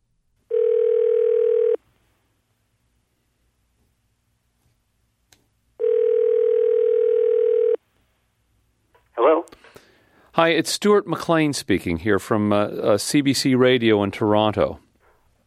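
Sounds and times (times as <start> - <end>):
telephone call ringing tone: 0.5 - 1.8, 5.8 - 7.8
speech: 10.4 - 14.8.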